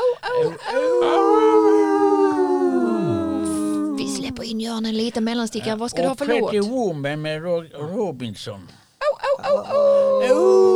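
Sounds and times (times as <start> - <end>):
wolf-like howling: 0.7 - 4.6, 9.6 - 10.7
speech: 4.8 - 8.8, 9.4 - 10.7.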